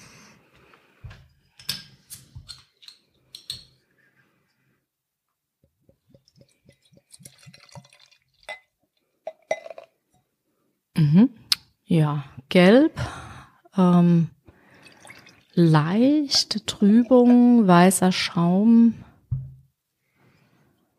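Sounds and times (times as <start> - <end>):
dry-hopped helles beer gurgling as poured from a glass bottle: 6.2 - 8.5, 14.8 - 15.6
glass beer bottle clinking: 7.4 - 9.9
speech: 11.0 - 13.0, 13.8 - 14.3, 15.6 - 19.0.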